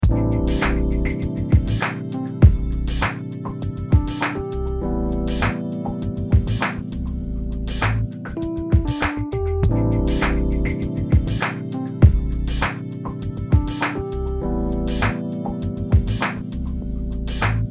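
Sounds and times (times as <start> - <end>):
music: 0.0 - 17.6.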